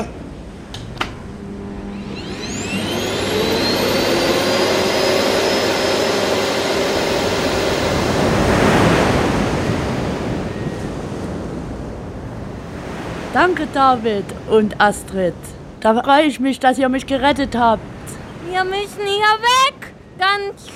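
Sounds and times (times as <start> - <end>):
vacuum cleaner motor running: 0.7 - 10.2
speech: 13.4 - 17.9, 18.5 - 20.7.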